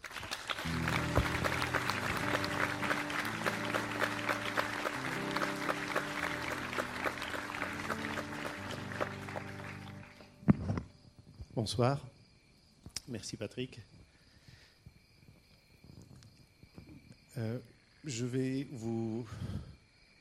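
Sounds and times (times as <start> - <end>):
large audience applauding loudly: 0.0 - 10.5
upbeat music: 0.7 - 10.3
speech: 11.6 - 12.1, 13.1 - 13.9, 17.4 - 19.7.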